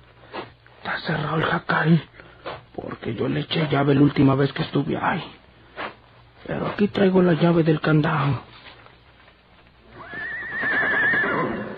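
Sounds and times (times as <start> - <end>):
speech: 0.9 - 2.2, 2.8 - 5.4, 6.4 - 8.5
horse neighing in its stall: 9.9 - 11.7.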